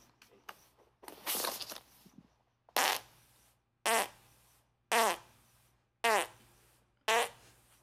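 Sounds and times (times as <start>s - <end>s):
recorded series of farts: 2.8s - 3.1s, 4.9s - 5.3s, 6.0s - 6.4s, 7.1s - 7.4s.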